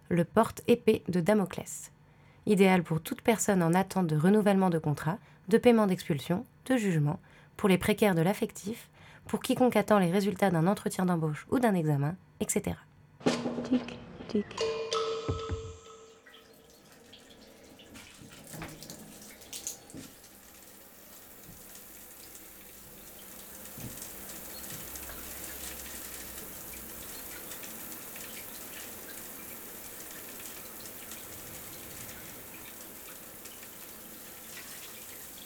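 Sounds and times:
speech: 0.1s - 15.5s
warm shower water running: 16.2s - 35.4s.

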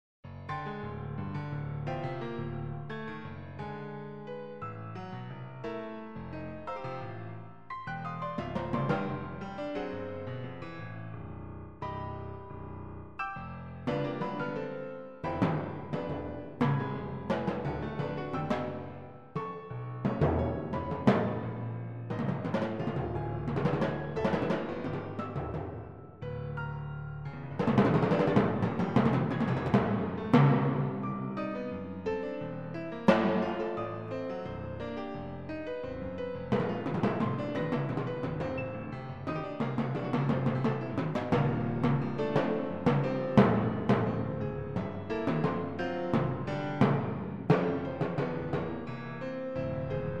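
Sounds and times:
piano: 0.2s - 50.1s
timpani: 5.7s - 11.2s, 13.2s - 50.1s.

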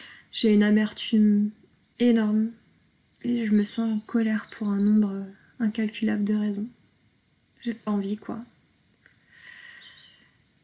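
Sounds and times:
soft outdoor hiss: 0.0s - 10.6s
speech: 0.4s - 2.6s, 3.2s - 6.8s, 7.6s - 8.5s
small birds singing outside open window: 1.7s - 2.6s, 3.2s - 6.7s, 7.6s - 10.6s.

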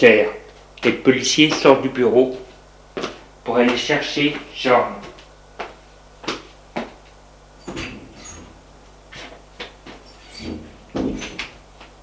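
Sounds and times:
speech: 0.0s - 2.4s, 3.5s - 5.1s
low steady hum: 0.0s - 12.0s
knocking on an office door at a police station: 10.4s - 11.3s.

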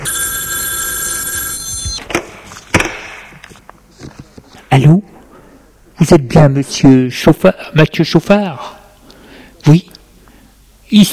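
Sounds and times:
old-style telephone bell ringing: 0.0s - 2.0s
speech: 6.1s - 8.8s, 9.6s - 9.9s, 10.9s - 11.1s.

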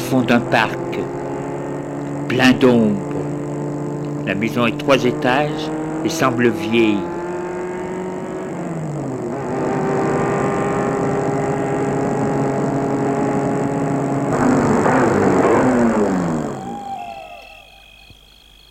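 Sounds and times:
car engine humming as the vehicle rolls along a path: 0.0s - 18.2s
speech: 0.1s - 1.2s, 2.3s - 3.1s, 4.3s - 7.1s.

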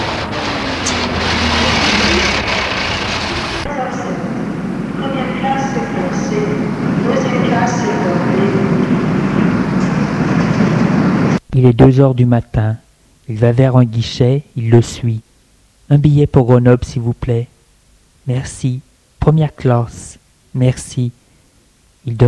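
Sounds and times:
indistinct voices in a train station: 0.0s - 10.1s
steady loud rumble of trains in a train station: 0.0s - 11.4s
speech: 11.6s - 15.3s, 15.9s - 17.5s, 18.2s - 21.2s, 22.0s - 22.2s.

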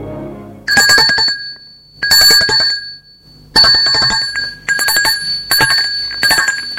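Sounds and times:
doorbell ringing at front door: 0.7s - 6.7s.

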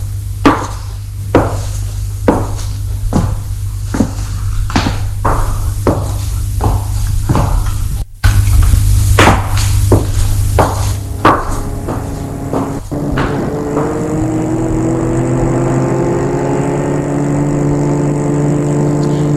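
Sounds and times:
car engine humming as the vehicle drives off: 0.0s - 19.3s
sharp knocks and thuds: 2.3s - 16.4s.

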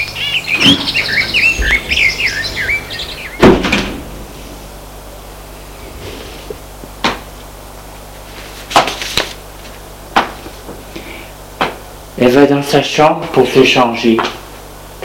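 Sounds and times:
birds chirping outside: 0.0s - 5.9s
house door opening and shutting with a heavy thud: 0.6s - 4.3s
speech: 12.3s - 14.4s.

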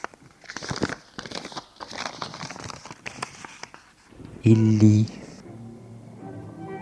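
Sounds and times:
crumpled white sheet of paper being smoothed out: 0.0s - 4.6s
speech: 4.4s - 5.2s.

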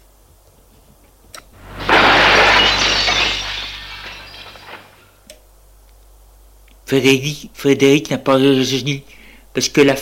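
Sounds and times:
glass bottle thrown to the ground, shattering: 1.6s - 5.1s
speech: 6.9s - 10.0s.

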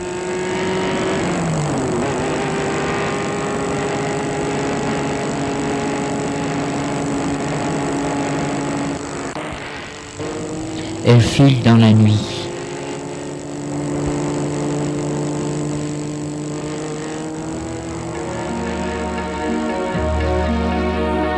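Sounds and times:
car engine humming while speeding away at night: 0.0s - 21.3s
speech: 11.1s - 12.4s.

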